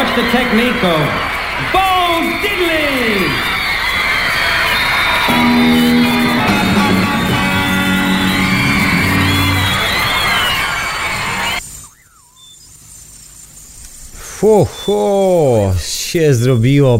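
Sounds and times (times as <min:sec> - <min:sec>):
concert crowd shrieking and squealing: 0:00.0 - 0:11.6
speech: 0:00.2 - 0:03.6, 0:05.4 - 0:06.0, 0:14.4 - 0:16.9
loud driving rock and roll band playing: 0:05.2 - 0:11.6.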